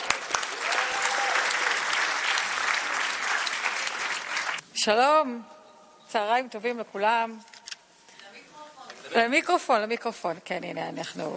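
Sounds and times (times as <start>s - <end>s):
audience applause: 0.0s - 4.6s
speech: 4.8s - 7.5s, 9.1s - 11.3s.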